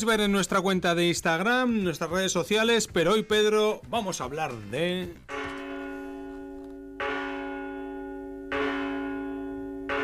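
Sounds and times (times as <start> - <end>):
speech: 0.0 - 5.3
large cathedral church bells tolling: 5.3 - 10.0.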